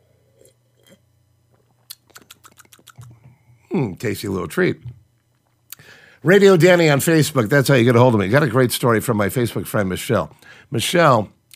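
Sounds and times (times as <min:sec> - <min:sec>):
person sipping a drink: 0:00.2 - 0:03.6
wet clicks and swallowing sounds: 0:00.3 - 0:03.6
soft mouth noises: 0:01.6 - 0:05.0
speech: 0:03.8 - 0:04.9, 0:06.2 - 0:11.4.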